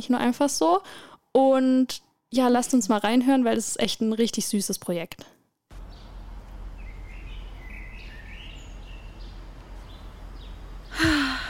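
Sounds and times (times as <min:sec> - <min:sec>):
speech: 0:00.0 - 0:05.4
faint scattered bird chirps outdoors: 0:05.7 - 0:11.4
steady outdoor hiss in sunshine: 0:05.7 - 0:11.4
sudden breathy sigh: 0:10.9 - 0:11.4.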